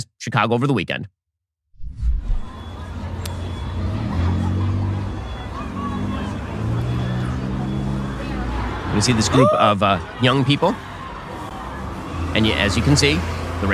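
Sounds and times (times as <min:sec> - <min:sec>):
speech: 0:00.0 - 0:01.2, 0:09.0 - 0:10.9, 0:12.4 - 0:13.7
steady street traffic rumble and engine noise: 0:01.8 - 0:13.7
crowd of people clamoring on a busy street in Chicago: 0:03.7 - 0:12.3.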